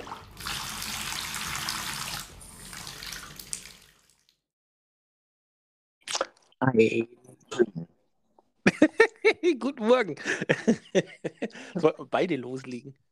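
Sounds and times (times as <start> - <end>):
cold water gushing from a tap into a bathtub: 0.0 - 4.4
speech: 6.6 - 7.9, 9.2 - 13.1
laughter: 8.7 - 12.0.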